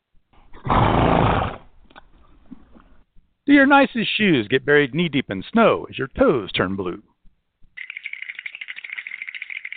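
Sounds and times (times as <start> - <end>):
horse snorting: 0.5 - 1.7
speech: 3.5 - 7.1.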